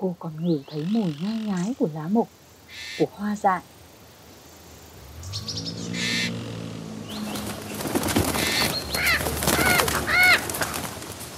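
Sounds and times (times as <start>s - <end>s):
speech: 0.0s - 3.8s, 5.3s - 5.7s
sharp chirping bird calls: 0.0s - 10.5s
low hum: 4.8s - 8.9s
parrot wings flapping as it flies past: 7.1s - 11.3s.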